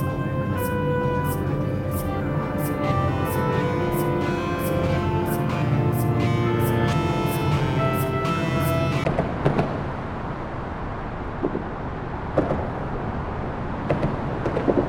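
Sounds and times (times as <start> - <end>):
droning engine tone: 0.0 - 9.0
city traffic roar under a viaduct in downtown Seattle: 0.0 - 14.8.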